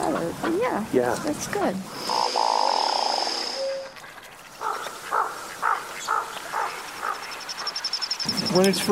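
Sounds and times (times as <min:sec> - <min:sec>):
speech: 0:00.4 - 0:02.5, 0:08.5 - 0:08.9
steady high-pitched whine: 0:01.9 - 0:04.0, 0:06.8 - 0:08.9
duck courtship call: 0:02.1 - 0:08.6.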